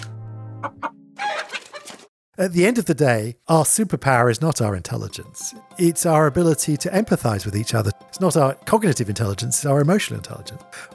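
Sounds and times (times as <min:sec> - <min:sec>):
chicken clucking: 0:00.6 - 0:02.0
speech: 0:02.4 - 0:10.9.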